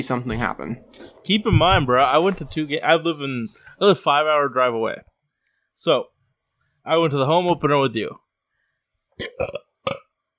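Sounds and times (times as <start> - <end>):
speech: 0.0 - 5.1, 5.8 - 6.1, 6.8 - 8.2, 9.2 - 10.0
person burping: 9.2 - 10.2.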